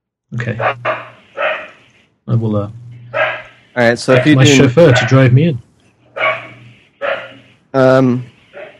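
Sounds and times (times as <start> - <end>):
speech: 0.3 - 1.0, 2.3 - 2.8, 3.8 - 5.7, 7.8 - 8.3
guard dogs barking: 0.6 - 1.9, 3.1 - 5.4, 6.1 - 7.6, 8.4 - 8.7.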